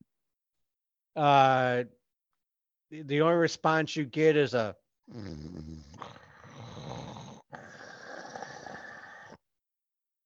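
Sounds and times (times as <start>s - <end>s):
speech: 1.2s - 2.0s, 2.9s - 5.8s
person imitating a growl with a low gravelly rasp: 5.1s - 9.4s.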